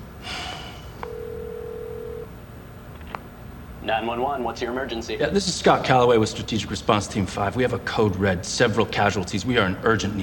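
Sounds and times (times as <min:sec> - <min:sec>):
steady electronic telephone tone: 0:01.0 - 0:02.3
speech: 0:03.9 - 0:10.2.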